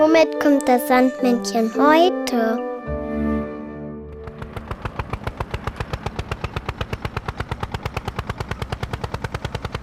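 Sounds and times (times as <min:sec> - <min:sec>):
speech: 0:00.1 - 0:02.7
tractor engine chugging: 0:04.1 - 0:09.7.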